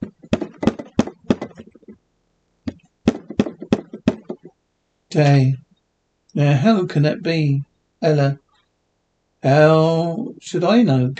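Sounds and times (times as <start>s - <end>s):
firm knocking on a door: 0.0s - 2.0s, 2.7s - 4.5s
speech: 5.1s - 5.6s, 6.4s - 8.4s, 9.4s - 11.1s.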